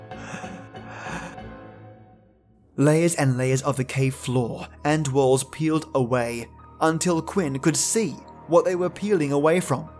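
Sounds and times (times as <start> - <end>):
sharp panicked gasp for air: 0.0 - 1.5
speech: 2.8 - 9.9.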